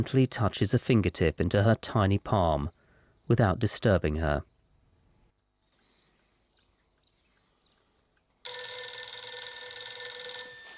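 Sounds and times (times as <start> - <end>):
speech: 0.0 - 4.5
old-style telephone bell ringing: 8.5 - 10.7.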